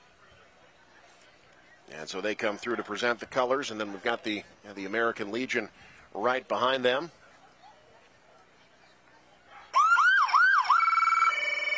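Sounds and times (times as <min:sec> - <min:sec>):
speech: 0:02.1 - 0:07.2
emergency vehicle siren: 0:09.7 - 0:11.7.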